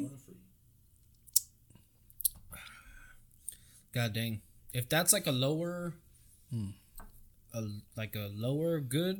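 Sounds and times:
wet mouth clicks: 0:01.2 - 0:02.4
speech: 0:03.9 - 0:06.8, 0:07.5 - 0:09.1.

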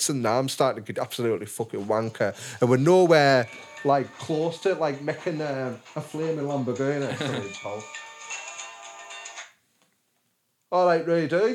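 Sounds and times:
speech: 0:00.0 - 0:08.0, 0:10.7 - 0:11.5
mobile phone ringing with a bright melodic electronic ringtone: 0:03.4 - 0:04.4, 0:07.4 - 0:09.5
laughter: 0:06.8 - 0:07.8.

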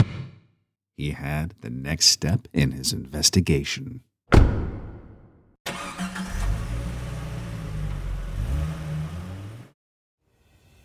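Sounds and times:
speech: 0:01.0 - 0:04.6
car door thudding: 0:04.3 - 0:05.2
car engine starting and revving: 0:05.7 - 0:09.8.

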